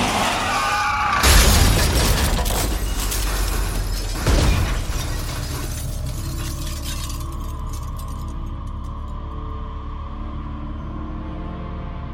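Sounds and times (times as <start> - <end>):
car crash impact as a pickup truck sideswipes a car: 0.0 - 7.5
glass shattering in a car crash: 1.2 - 8.4.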